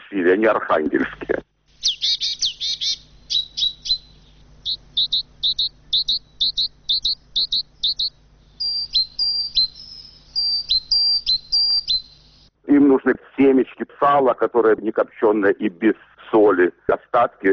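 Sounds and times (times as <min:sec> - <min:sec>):
speech: 0:00.1 - 0:01.4, 0:13.0 - 0:17.5
sparrows chirping: 0:01.7 - 0:12.5.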